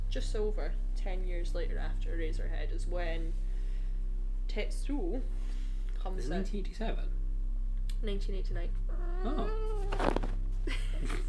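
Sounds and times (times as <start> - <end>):
steady low hum: 0.0 - 11.2
speech: 0.1 - 3.5, 4.5 - 7.2, 8.0 - 11.2
cat yowling: 8.9 - 10.2.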